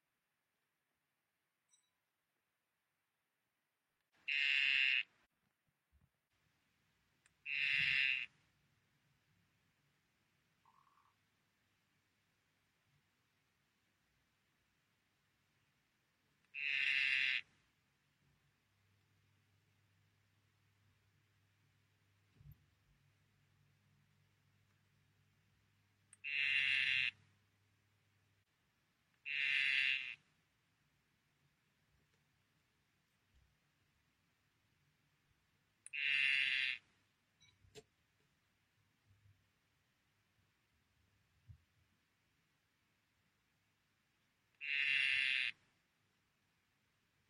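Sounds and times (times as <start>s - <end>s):
Dendrobates tinctorius azureus calling: 4.2s - 5.2s, 7.4s - 8.4s, 10.6s - 11.2s, 16.5s - 17.5s, 26.2s - 27.2s, 29.2s - 30.2s, 35.9s - 36.9s, 44.6s - 45.6s.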